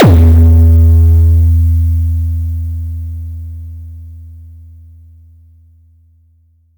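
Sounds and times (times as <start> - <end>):
booming sound: 0.0 - 2.0.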